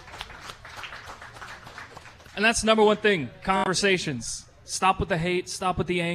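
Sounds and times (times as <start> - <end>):
crowd applause: 0.0 - 2.6
speech: 2.4 - 6.1.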